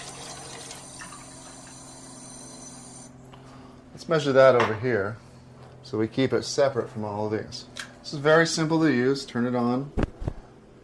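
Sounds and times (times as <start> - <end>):
unfiltered tap water running into a container: 0.0 - 3.1
faint ringing tone: 0.3 - 3.2
speech: 4.0 - 5.2, 5.9 - 10.0.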